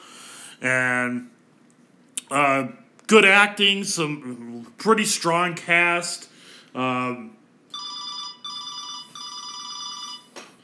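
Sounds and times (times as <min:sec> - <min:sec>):
speech: 0:00.6 - 0:01.4, 0:02.3 - 0:07.4
phone ringing with bright electronic trill: 0:07.7 - 0:10.4.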